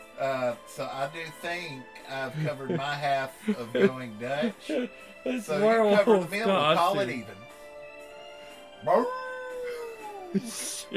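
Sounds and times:
speech: 0.2s - 7.4s, 10.3s - 10.9s
person imitating a wolf howl: 8.9s - 10.4s.

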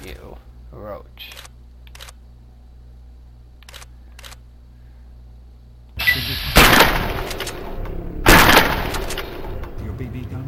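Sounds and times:
steady hum: 0.0s - 10.4s
speech: 0.1s - 1.4s
camera shutter snapping as a picture of a rat roach is taken: 1.3s - 2.2s, 6.6s - 7.7s, 8.4s - 9.3s.

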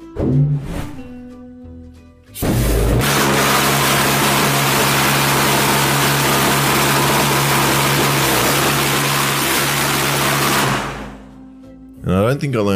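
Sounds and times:
speech: 0.2s - 0.9s, 12.3s - 12.7s
pulse jet engine with augmentor roaring: 2.7s - 11.2s.

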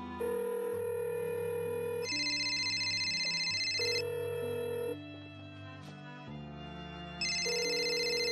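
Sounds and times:
electronic phone ringtone with synth tones and beat: 0.2s - 5.0s, 7.2s - 8.2s.

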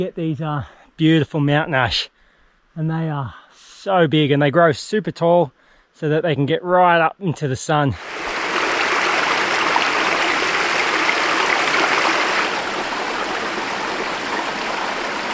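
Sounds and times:
speech: 0.0s - 2.2s, 2.8s - 8.3s
mountain creek water rushing over rocks: 8.0s - 15.3s.

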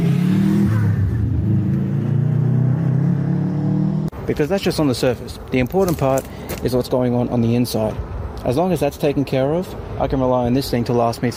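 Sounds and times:
car engine revving: 0.0s - 4.1s
speech: 4.3s - 11.3s.

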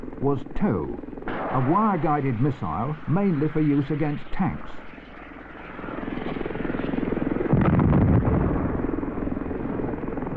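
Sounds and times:
Huey helicopter rotor and engine drone: 0.0s - 10.3s
speech: 0.2s - 4.9s.

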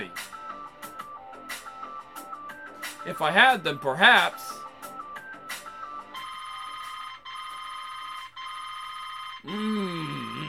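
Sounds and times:
speech: 3.0s - 4.4s
phone alarm ringing: 5.8s - 10.4s.

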